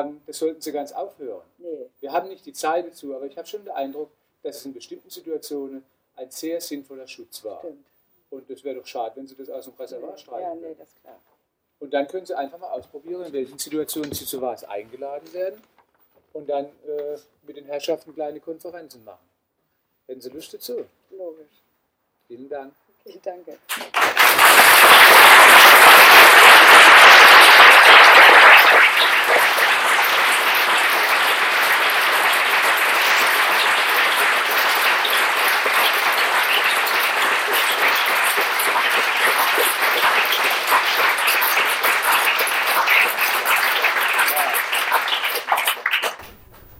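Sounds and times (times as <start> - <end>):
speech: 0.0 - 15.7, 16.3 - 19.3, 20.1 - 21.6, 22.3 - 26.2
audience applause: 23.7 - 46.7.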